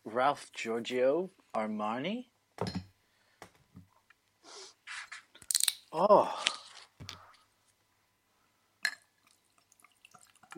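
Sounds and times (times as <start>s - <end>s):
speech: 0.2s - 2.8s, 5.9s - 6.6s
glass clink: 2.6s - 2.9s
Jack Daniels whiskey pouring from a glass bottle: 8.9s - 10.5s.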